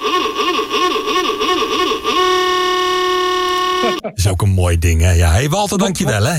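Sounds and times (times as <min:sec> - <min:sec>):
old horn blaring with a warbling wavering tone: 0:00.0 - 0:04.0
speech: 0:04.0 - 0:06.3.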